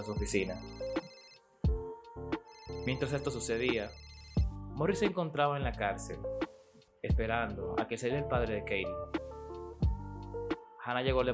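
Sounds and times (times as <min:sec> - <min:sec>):
speech: 0:00.0 - 0:00.9, 0:02.8 - 0:04.0, 0:04.8 - 0:06.4, 0:07.0 - 0:09.2, 0:10.9 - 0:11.3
telephone ringing: 0:00.0 - 0:04.5.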